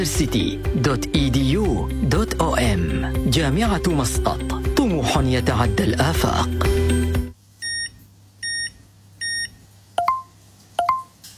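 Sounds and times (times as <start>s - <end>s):
speech: 0.0s - 6.8s
card payment terminal beeps: 7.6s - 11.2s.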